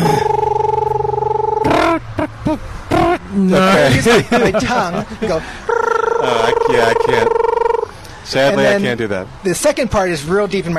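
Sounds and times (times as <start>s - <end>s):
person imitating a screech owl call: 0.0s - 3.4s, 5.7s - 8.0s
speech: 3.4s - 5.6s, 6.2s - 7.5s, 8.3s - 10.7s
laughter: 3.6s - 5.5s.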